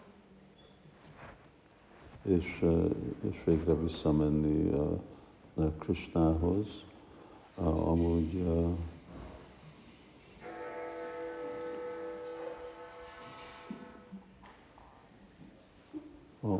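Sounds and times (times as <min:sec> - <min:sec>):
speech: 0:02.2 - 0:06.9, 0:07.6 - 0:08.9
bell ringing with a sustained metallic tone: 0:10.4 - 0:14.0.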